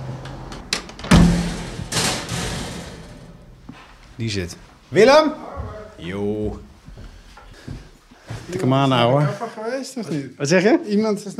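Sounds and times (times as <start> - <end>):
rushing rattle of a door: 0.0 - 3.6
door thudding open after its latch is released by pulling a string: 0.2 - 3.7
heavy knock of a door: 0.6 - 3.8
speech: 4.2 - 6.7, 8.5 - 11.3.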